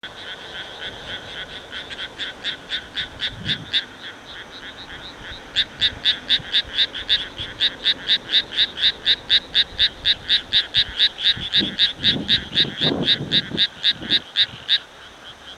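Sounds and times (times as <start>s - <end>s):
background hiss: 0.0s - 15.5s
frog calling: 0.0s - 15.5s.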